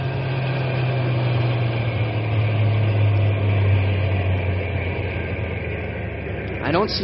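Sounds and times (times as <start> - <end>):
truck engine idling: 0.0 - 7.0
speech: 6.7 - 7.0.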